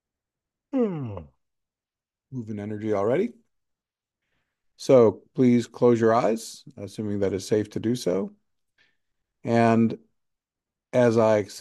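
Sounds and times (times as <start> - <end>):
speech: 0.7 - 1.3, 2.3 - 3.4, 4.8 - 8.4, 9.4 - 10.1, 10.9 - 11.5
long yawn during a shamanic group session: 0.7 - 1.4.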